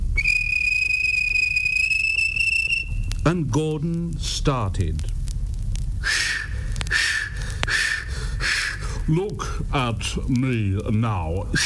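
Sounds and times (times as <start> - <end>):
railway guard's whistle blast at a station: 0.0 - 3.1, 6.0 - 8.8
low rumbling background: 0.0 - 11.6
speech: 3.3 - 5.2, 9.1 - 11.6.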